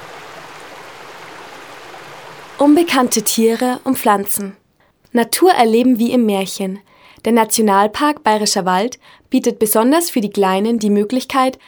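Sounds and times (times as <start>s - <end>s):
rushing forest stream: 0.0s - 3.6s
speech: 2.6s - 11.6s.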